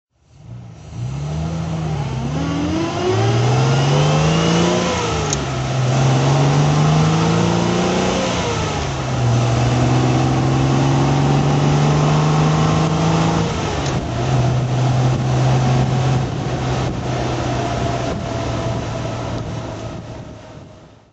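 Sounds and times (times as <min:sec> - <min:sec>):
Healey 3000 MkII three-carburettor car driving: 0:00.2 - 0:21.1.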